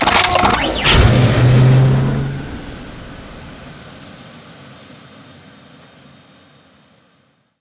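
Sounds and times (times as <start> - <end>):
rocket pack boosters extending: 0.0 - 4.0.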